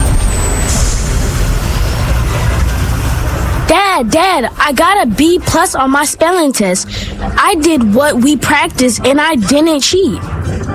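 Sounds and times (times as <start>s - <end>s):
bus engine droning while pulling up to a bus stop: 0.0s - 10.7s
speech: 4.0s - 10.7s.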